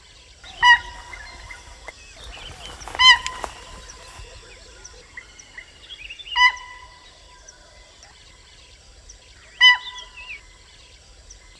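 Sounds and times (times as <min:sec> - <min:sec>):
Rusa unicolor alarm call: 0:00.4 - 0:07.8, 0:09.5 - 0:10.5.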